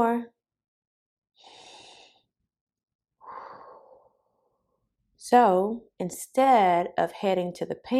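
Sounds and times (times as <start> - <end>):
speech: 0.0 - 0.4, 5.3 - 7.9
deep breaths taken as a calming habit exercise: 1.4 - 2.3, 3.2 - 4.5.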